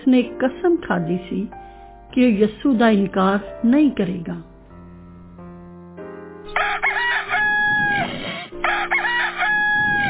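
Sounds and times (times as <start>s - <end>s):
speech: 0.1s - 4.5s
rooster crowing: 6.5s - 10.0s.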